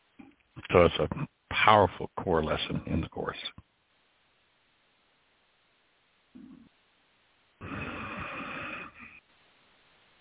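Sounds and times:
speech: 0.7 - 3.6
deep rasping breathing: 7.6 - 9.2.

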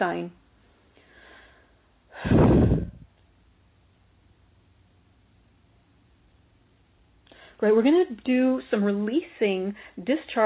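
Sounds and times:
speech: 0.0 - 0.4, 7.6 - 10.4
deep forceful breath: 1.0 - 3.1.

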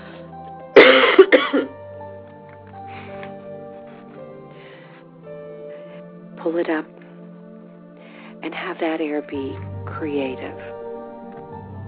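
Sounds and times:
person coughing harshly: 0.8 - 1.7
speech: 6.5 - 7.0, 8.4 - 10.8.

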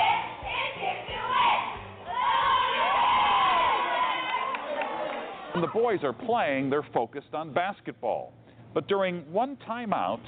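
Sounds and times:
crowd cheering and yelling in a gym: 0.0 - 5.6
speech: 5.6 - 10.2.

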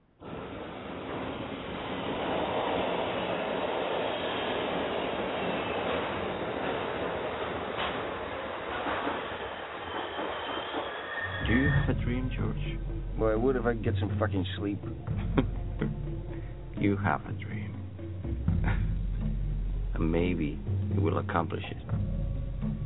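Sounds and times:
subway train rumbling: 0.0 - 22.8
faint metallic squeals of subway train: 9.2 - 12.4
speech: 12.2 - 15.5, 16.8 - 17.5, 20.0 - 21.9.

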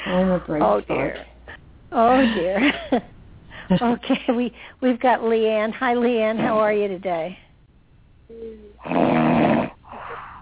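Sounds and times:
speech: 0.1 - 1.3, 1.9 - 3.1, 3.7 - 7.4, 8.3 - 9.7
person snoring over a phone line: 8.8 - 10.4.

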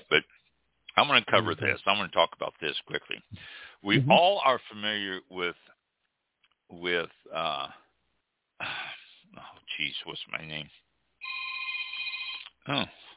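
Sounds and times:
speech: 1.1 - 5.8, 6.7 - 7.8, 8.6 - 10.8, 12.7 - 13.0
telephone ringing with an incoming call on a live radio phone-in: 11.2 - 12.4.

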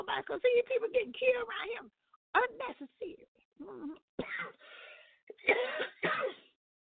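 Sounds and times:
speech: 0.2 - 4.6
rough harsh coughs: 4.2 - 4.6, 5.3 - 6.6.

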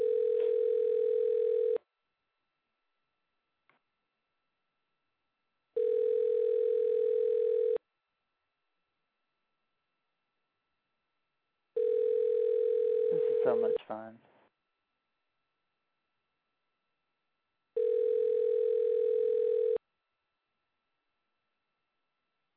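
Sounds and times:
phone ringback tone: 0.0 - 1.8, 5.8 - 7.8, 11.8 - 13.8, 17.8 - 19.8
speech: 13.9 - 14.3.

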